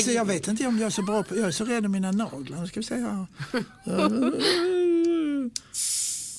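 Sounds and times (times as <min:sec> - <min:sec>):
speech: 0:00.0 - 0:04.8
laughter: 0:00.5 - 0:02.5, 0:03.4 - 0:05.5
strained whining vocal sound: 0:03.8 - 0:05.7
fizzing hiss of gas escaping a drink can: 0:05.7 - 0:06.3.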